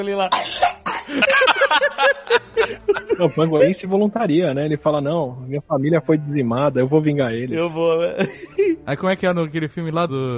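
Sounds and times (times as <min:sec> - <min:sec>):
speech: 0:00.0 - 0:10.3
person mimicking coughing: 0:00.3 - 0:01.4
laugh-like sounds: 0:01.0 - 0:04.0, 0:07.6 - 0:09.0.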